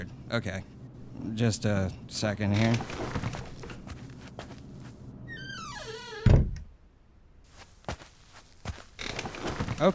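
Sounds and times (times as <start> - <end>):
speech: 0.0 - 3.1
soft room noise: 0.0 - 9.9
faint shuffling footsteps: 2.8 - 5.1, 7.4 - 9.9
room door hinge creaking in a soundproof booth: 5.3 - 6.6, 9.0 - 9.8.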